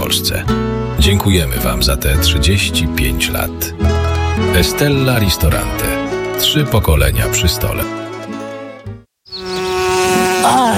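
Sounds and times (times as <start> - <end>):
speech: 0.1 - 8.0
bees buzzing around flowers in a garden: 7.9 - 10.7.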